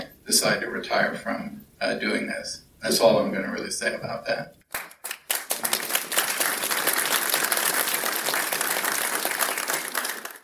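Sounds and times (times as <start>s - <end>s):
speech: 0.3s - 4.8s
crowd applauding: 4.7s - 10.4s.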